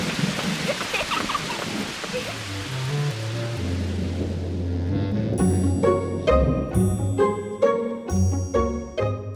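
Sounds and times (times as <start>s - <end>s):
rain hissing: 0.0s - 7.3s
low rolling rumble: 1.7s - 7.5s
bright ringing musical notes: 5.4s - 9.3s.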